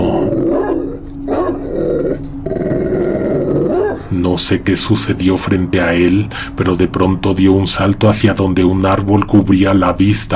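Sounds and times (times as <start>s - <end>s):
dog growling and snarling: 0.0s - 4.1s
dog barking loudly: 0.2s - 1.7s, 3.7s - 4.1s
speech: 4.4s - 10.3s.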